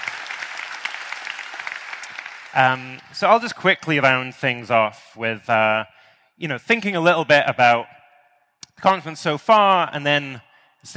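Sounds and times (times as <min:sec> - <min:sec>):
audience applauding: 0:00.0 - 0:04.0
speech: 0:02.5 - 0:08.0, 0:08.8 - 0:10.9.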